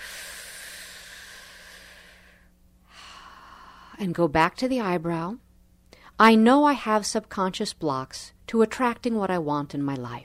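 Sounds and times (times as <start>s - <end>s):
deep breath: 0.0s - 4.0s
speech: 4.0s - 5.4s, 6.2s - 10.2s.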